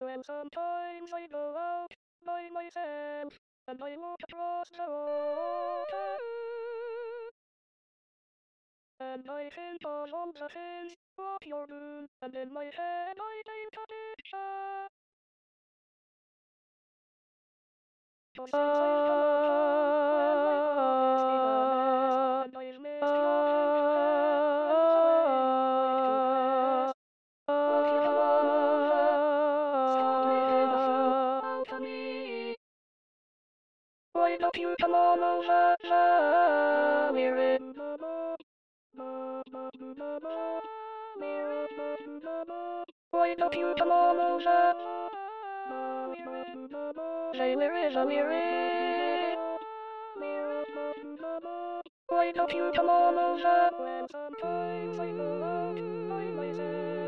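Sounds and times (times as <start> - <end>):
second alto voice singing in SATB choir part: 0.0 - 7.3, 18.4 - 32.6, 34.2 - 38.4, 39.0 - 57.0.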